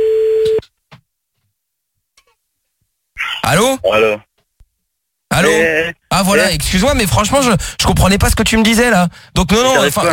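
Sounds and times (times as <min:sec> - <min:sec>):
steady flat telephone line tone while calling back: 0:00.0 - 0:00.6
speech: 0:03.5 - 0:04.3, 0:05.4 - 0:10.1.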